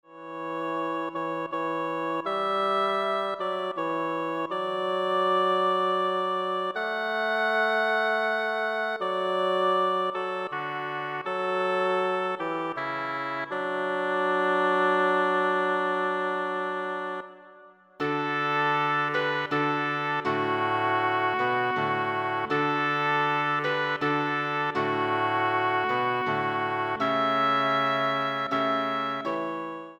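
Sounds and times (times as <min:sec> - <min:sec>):
bassoon: 0:00.0 - 0:29.9
oboe: 0:00.0 - 0:29.9.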